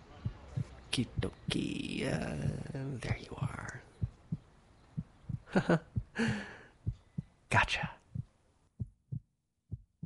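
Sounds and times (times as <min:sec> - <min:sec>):
slow steady heartbeat thumping: 0:00.2 - 0:01.5, 0:04.0 - 0:10.0
speech: 0:01.0 - 0:03.7, 0:05.5 - 0:06.6, 0:07.5 - 0:08.0.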